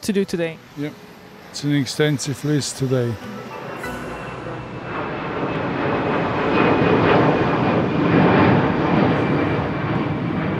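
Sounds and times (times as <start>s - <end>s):
speech: 0.0s - 3.6s
private jet aircraft engine roaring while passing at an airport: 0.0s - 10.5s.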